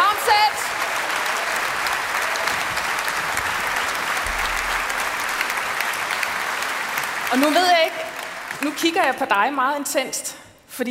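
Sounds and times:
audience applause for performers: 0:00.0 - 0:09.5
speech: 0:07.3 - 0:08.0, 0:08.6 - 0:10.8.

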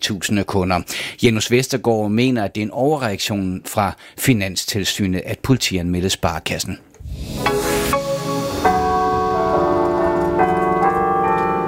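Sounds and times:
speech: 0:00.0 - 0:08.0
church carillon bells ringing a melody: 0:08.4 - 0:11.6.

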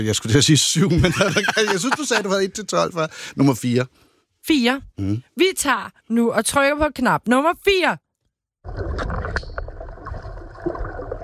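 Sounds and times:
speech: 0:00.0 - 0:08.0
laughter: 0:00.8 - 0:02.6
water splashing and gurgling: 0:08.6 - 0:11.2.

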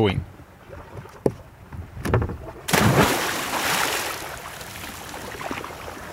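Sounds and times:
speech: 0:00.0 - 0:00.3
person jumping into the sea with a loud splash: 0:02.7 - 0:05.9.

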